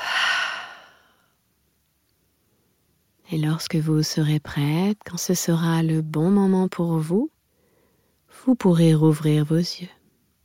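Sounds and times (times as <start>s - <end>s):
forceful exhale through the mouth: 0.0s - 1.2s
deep inhale through the nose: 0.0s - 1.3s
speech: 3.3s - 7.3s, 8.4s - 10.0s.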